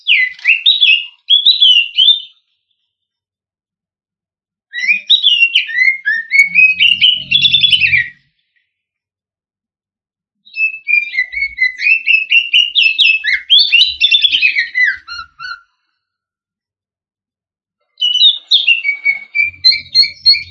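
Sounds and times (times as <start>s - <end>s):
green leafbird singing whistled notes: 0.0s - 3.0s, 4.7s - 8.8s, 10.4s - 16.5s, 17.9s - 20.4s.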